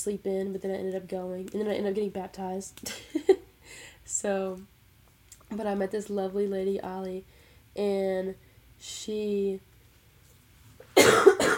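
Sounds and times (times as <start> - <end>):
speech: 0.0 - 4.8, 5.5 - 9.7
person coughing: 11.0 - 11.5.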